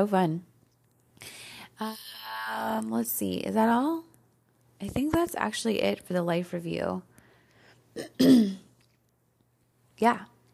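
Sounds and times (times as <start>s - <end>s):
speech: 0.0s - 0.5s, 1.2s - 4.1s, 4.8s - 7.1s, 8.0s - 8.6s, 10.0s - 10.3s
person burping: 8.0s - 8.7s.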